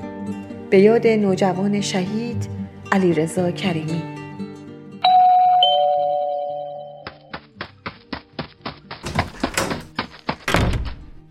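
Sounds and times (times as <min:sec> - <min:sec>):
speech: 0:00.7 - 0:04.1
house doorbell two-tone ding-dong: 0:05.1 - 0:07.1
hollow knocks or thunks: 0:07.1 - 0:11.2.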